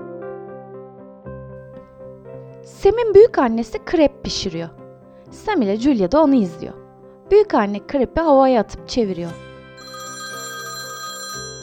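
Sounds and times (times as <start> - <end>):
speech: 2.6 - 9.9
telephone ringing in a living room: 9.8 - 11.6.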